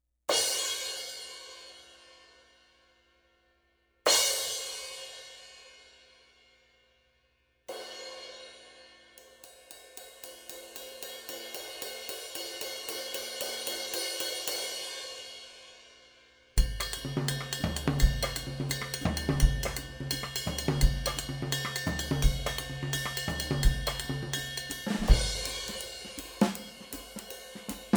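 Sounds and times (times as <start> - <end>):
Sabian Proto AA cymbal: 0.3 - 3.1, 4.1 - 6.5, 7.7 - 27.9.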